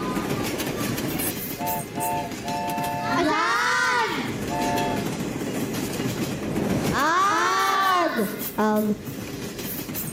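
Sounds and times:
train starting off and chugging along: 0.0s - 10.1s
short tonal horn-like notes: 1.6s - 3.3s, 4.5s - 5.0s
speech: 8.7s - 9.2s.

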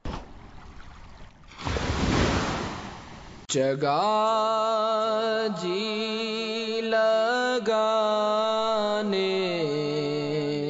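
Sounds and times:
rushing floodwater with surging waves: 0.0s - 3.5s
speech: 3.5s - 9.8s.

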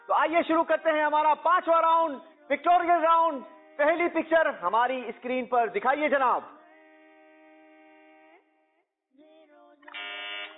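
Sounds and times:
speech: 0.2s - 6.6s
quiz contestant electronic buzzer: 6.7s - 8.5s, 9.9s - 10.5s.

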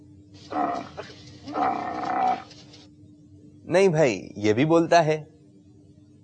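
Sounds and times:
speech: 0.5s - 2.5s, 3.7s - 5.3s
camel groaning bellows: 0.5s - 2.6s.

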